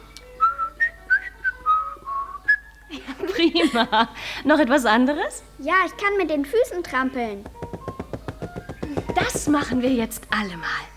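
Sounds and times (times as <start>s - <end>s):
person whistling a short bouncy tune: 0.2s - 2.8s
laughter: 2.9s - 4.2s
speech: 3.4s - 7.6s, 9.2s - 10.9s.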